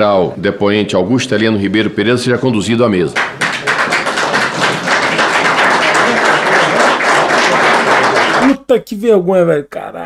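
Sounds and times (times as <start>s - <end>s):
speech: 0.0s - 3.4s, 8.5s - 10.0s
applause from a group of people in a hearing room: 3.1s - 8.6s.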